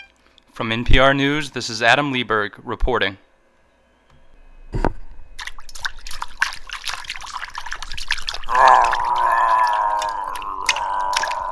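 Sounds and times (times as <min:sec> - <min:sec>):
speech: 0:00.6 - 0:03.3
water dripping from a hairy creature emerging from a river: 0:05.4 - 0:11.5.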